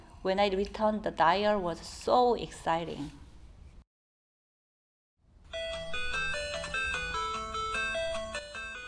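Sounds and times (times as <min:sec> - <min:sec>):
speech: 0:00.2 - 0:03.2
Game Boy handheld console chiptune melody: 0:05.5 - 0:08.8.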